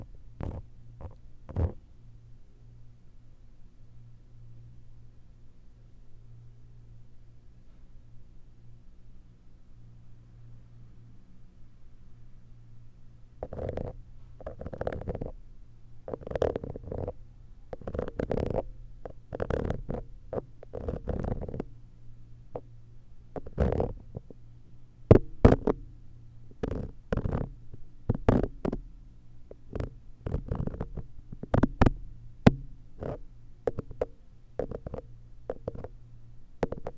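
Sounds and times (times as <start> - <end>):
muffled ear-cleaning scraping and rubbing: 0.0 - 1.8, 13.4 - 15.4, 16.1 - 17.2, 17.8 - 21.7, 23.4 - 24.4, 26.6 - 28.8, 29.5 - 31.9, 32.5 - 35.9, 36.6 - 36.9
low steady hum: 0.0 - 36.9.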